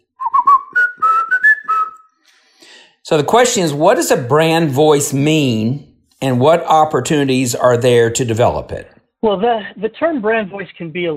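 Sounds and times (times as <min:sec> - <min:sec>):
whistled brand tune melody: 0:00.0 - 0:02.3
speech: 0:03.1 - 0:11.1.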